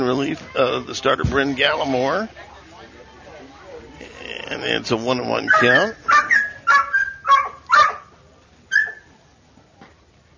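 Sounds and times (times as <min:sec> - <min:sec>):
speech: 0:00.0 - 0:02.5, 0:04.0 - 0:06.1
dog giving high strained barks and whiny yelps: 0:05.4 - 0:08.1, 0:08.7 - 0:09.1.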